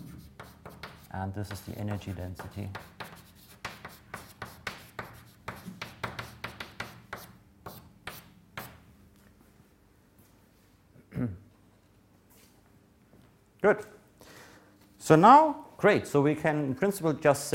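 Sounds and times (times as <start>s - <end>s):
handwriting equations during a physics lecture: 0.0s - 8.8s
speech: 1.2s - 3.0s, 13.6s - 14.0s, 15.1s - 17.5s.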